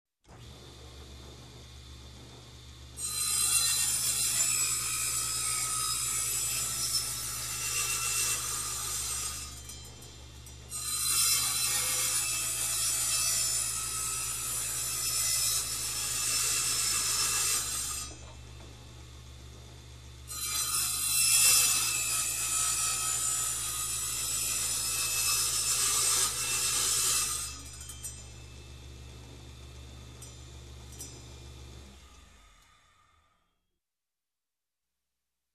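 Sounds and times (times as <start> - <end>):
electric hand cutter cutting steel: 0.3 - 33.4.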